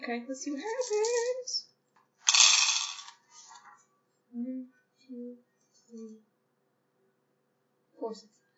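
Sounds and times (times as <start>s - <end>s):
speech: 0.0s - 1.6s, 4.4s - 6.3s, 8.0s - 8.4s
handful of dice clattering across a hard surface: 0.7s - 1.4s, 2.3s - 3.2s.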